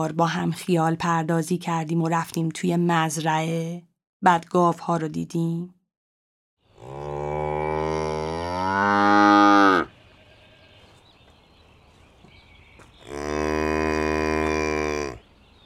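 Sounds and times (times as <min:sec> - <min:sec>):
speech: 0:00.0 - 0:05.8
buffalo mooing in the desert: 0:06.8 - 0:10.7, 0:13.0 - 0:15.2.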